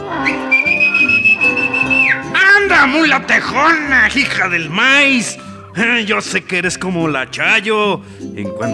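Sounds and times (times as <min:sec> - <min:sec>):
muleteer's whistle: 0:00.2 - 0:02.4
speech: 0:03.0 - 0:08.7.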